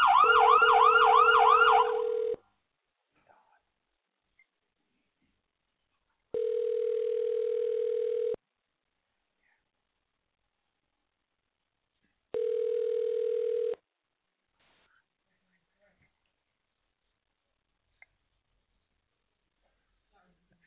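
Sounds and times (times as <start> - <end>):
telephone ringback tone through a thin phone line: 0.1 - 2.4, 6.3 - 8.4, 12.3 - 13.8.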